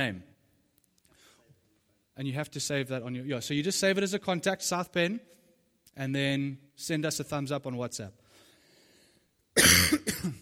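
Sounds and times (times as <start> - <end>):
speech: 0.0 - 0.3, 2.2 - 5.4, 6.0 - 8.2
harsh raspy coughs: 9.6 - 10.3.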